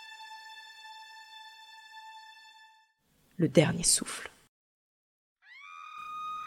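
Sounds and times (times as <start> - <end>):
speech: 3.4 - 4.3
harrowing scream: 5.5 - 6.4.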